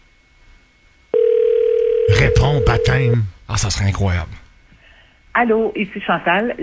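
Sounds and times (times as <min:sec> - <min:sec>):
telephone ringing tone during an outgoing call: 0:01.1 - 0:03.2
speech: 0:02.2 - 0:04.4, 0:05.4 - 0:06.6.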